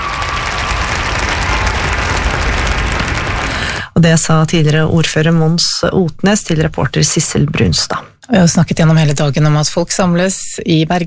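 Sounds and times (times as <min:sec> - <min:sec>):
crowd applauding outdoors at a statue unveiling: 0:00.0 - 0:04.0
speech: 0:04.0 - 0:11.0.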